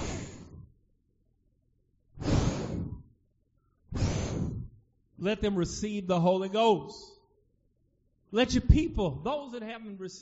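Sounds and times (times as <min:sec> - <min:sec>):
preacher blowing breath into a microphone: 0:00.0 - 0:00.8, 0:02.1 - 0:05.0
speech: 0:05.2 - 0:07.2, 0:08.3 - 0:10.2.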